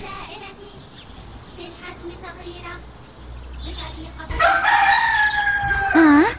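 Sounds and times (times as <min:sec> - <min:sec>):
rooster crowing: 0:04.4 - 0:06.3.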